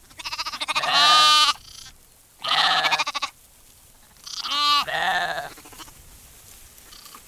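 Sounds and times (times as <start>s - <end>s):
sheep and lambs bleating: 0.0s - 3.4s, 4.2s - 6.0s.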